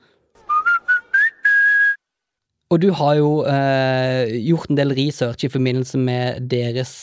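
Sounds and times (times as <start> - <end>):
whistled fast-food brand sound logo jingle: 0.4 - 2.0
speech: 2.7 - 7.0.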